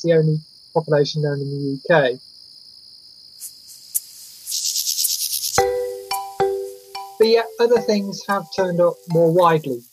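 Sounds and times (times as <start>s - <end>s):
speech: 0.0s - 2.3s, 7.2s - 9.9s
mole cricket trilling and chirping: 0.0s - 9.9s
sharp ringing struck tones: 5.6s - 9.9s.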